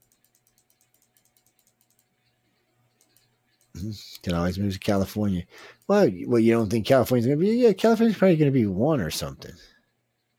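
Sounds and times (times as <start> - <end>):
computer clicks: 0.0 - 4.4
faint low hum: 0.0 - 10.3
speech: 3.8 - 9.7.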